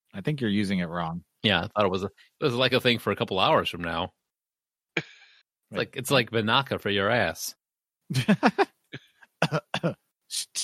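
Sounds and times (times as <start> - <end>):
speech: 0.2 - 4.2, 5.7 - 10.6
laughter: 8.1 - 8.8
person coughing: 9.0 - 10.0
throat-clearing grunts: 9.0 - 10.0.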